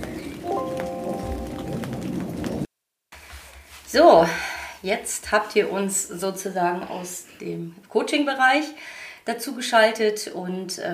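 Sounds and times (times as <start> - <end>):
steady rain pattering on a hard surface: 0.0 - 2.7
speech: 3.9 - 10.9.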